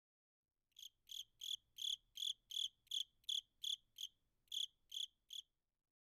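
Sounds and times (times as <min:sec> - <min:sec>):
cricket chirping: 0:00.8 - 0:05.6.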